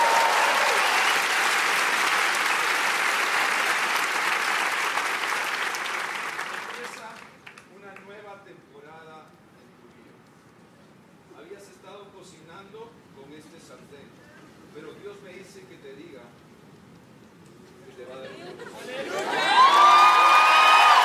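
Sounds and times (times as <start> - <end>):
large audience applauding: 0.0 - 7.7, 19.1 - 21.0.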